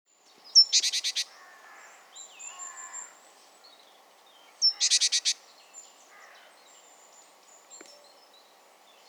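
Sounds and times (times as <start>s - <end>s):
great tit Parus major rasping buzzy calls: 0.6s - 1.8s, 4.6s - 5.4s.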